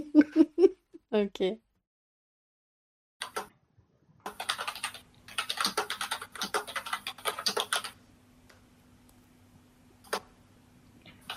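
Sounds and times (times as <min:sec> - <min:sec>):
speech: 0:01.2 - 0:01.7
rapid typing on a computer keyboard: 0:03.2 - 0:03.5, 0:04.3 - 0:08.0.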